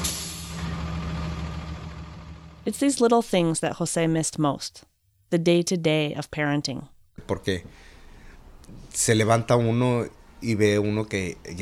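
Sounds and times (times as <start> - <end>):
school bus diesel engine idling: 0.0 - 2.6
speech: 2.6 - 7.9, 8.7 - 11.5.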